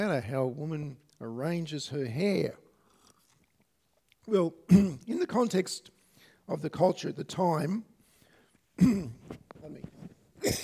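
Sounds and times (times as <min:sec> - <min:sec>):
speech: 0:00.0 - 0:02.6, 0:04.2 - 0:07.9, 0:08.8 - 0:10.6
person clearing throat: 0:04.7 - 0:05.1, 0:08.8 - 0:09.4, 0:10.4 - 0:10.6
person coughing: 0:04.7 - 0:05.1, 0:08.8 - 0:09.3, 0:10.4 - 0:10.6.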